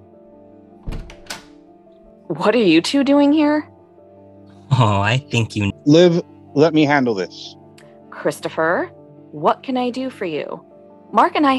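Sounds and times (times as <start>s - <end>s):
door being opened with a solid low thunk: 0.8s - 1.6s
latch-like clicks of a door: 0.8s - 1.6s
speech: 2.3s - 3.7s, 4.8s - 7.6s, 8.2s - 11.5s.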